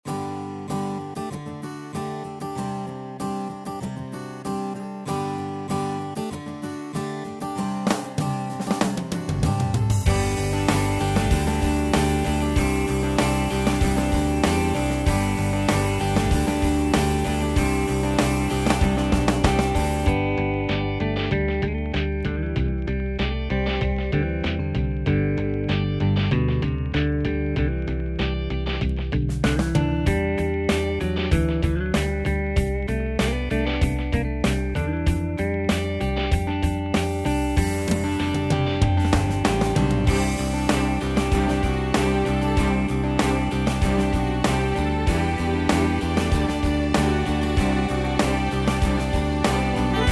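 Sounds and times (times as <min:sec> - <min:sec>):
guitar: 0:00.0 - 0:50.1
saxophone: 0:49.6 - 0:50.1.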